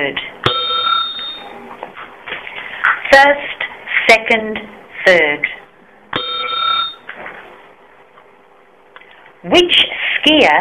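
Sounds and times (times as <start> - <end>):
speech: 0.0 - 0.4, 3.2 - 5.6, 9.4 - 10.5
bell ding signalling to turn the page: 0.5 - 1.5, 6.2 - 7.0.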